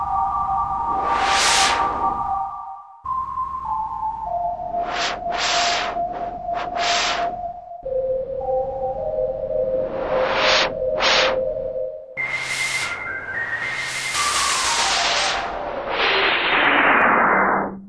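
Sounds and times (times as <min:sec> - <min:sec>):
synthesizer noise band preset: 0:00.2 - 0:02.9, 0:04.2 - 0:17.8.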